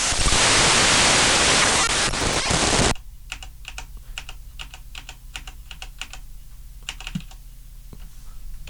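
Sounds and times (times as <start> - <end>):
loud dense digital hiss from a recording being scrubbed through: 0.0 - 3.0
irregular keyboard-like clicks: 2.9 - 6.2, 6.9 - 7.4.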